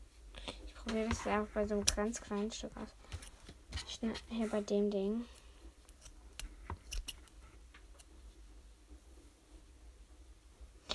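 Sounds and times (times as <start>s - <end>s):
speech: 0.9s - 3.0s, 4.0s - 5.4s
scissor snips while making a DIY riding crop for a hobby horse: 5.9s - 7.3s.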